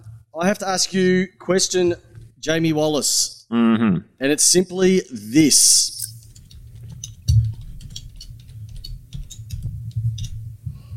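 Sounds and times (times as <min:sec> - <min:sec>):
speech: 0:00.4 - 0:06.0
keys clicking on a computer keyboard: 0:06.2 - 0:10.4.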